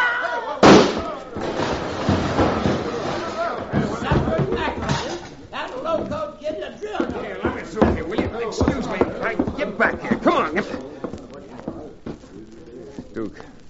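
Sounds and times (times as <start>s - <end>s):
gunshot in a saloon shootout: 0.6s - 3.0s
excited voices talking: 2.8s - 13.6s.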